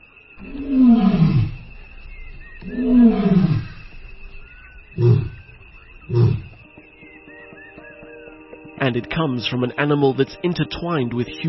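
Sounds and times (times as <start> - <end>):
lion roaring: 0.4 - 6.6
speech: 8.9 - 11.4.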